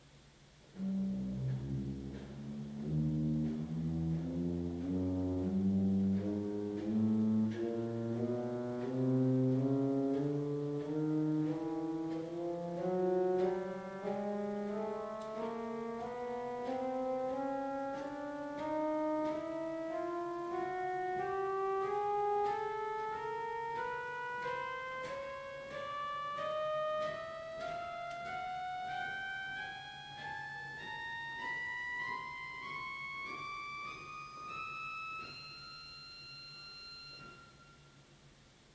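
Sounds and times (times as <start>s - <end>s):
pipe organ violin principal 8-foot stop: 0.7s - 38.0s.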